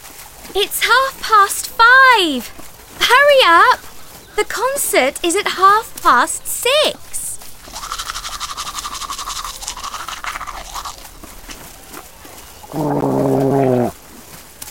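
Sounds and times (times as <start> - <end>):
speech: 0.5 - 7.1, 12.8 - 13.0
toothbrush scrubbing teeth: 7.4 - 11.6.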